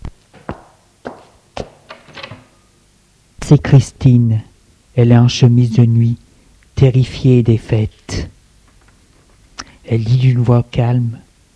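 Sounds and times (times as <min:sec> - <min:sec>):
footsteps: 0:00.0 - 0:01.8
speech: 0:03.5 - 0:06.2, 0:06.8 - 0:08.4, 0:09.9 - 0:11.2.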